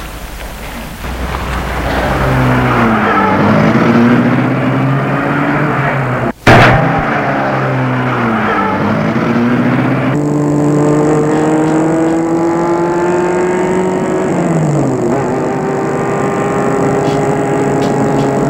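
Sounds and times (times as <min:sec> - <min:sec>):
black car engine starting, revving and shifting gears while driving away: 0:01.0 - 0:18.4.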